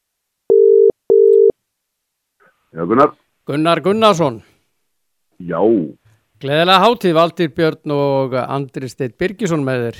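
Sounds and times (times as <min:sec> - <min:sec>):
telephone tone as a call is placed: 0:00.5 - 0:01.5
speech: 0:02.7 - 0:04.5, 0:05.4 - 0:09.9.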